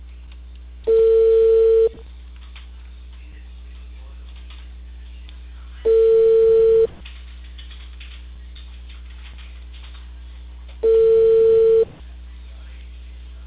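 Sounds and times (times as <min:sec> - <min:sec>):
ringback tone of an outgoing phone call: 0:00.9 - 0:02.0, 0:05.9 - 0:06.9, 0:10.8 - 0:11.9.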